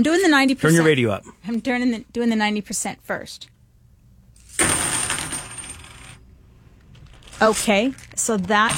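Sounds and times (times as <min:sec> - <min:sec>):
speech: 0:00.0 - 0:03.5, 0:07.4 - 0:08.7
silver half dollar coins dropped onto a table: 0:04.4 - 0:06.2, 0:06.9 - 0:08.7.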